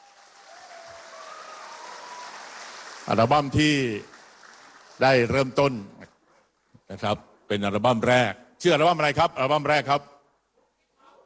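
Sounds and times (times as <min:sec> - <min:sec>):
audience applause welcoming a guest: 0:00.0 - 0:05.8
speech: 0:03.1 - 0:04.1, 0:05.0 - 0:06.0, 0:06.9 - 0:10.1.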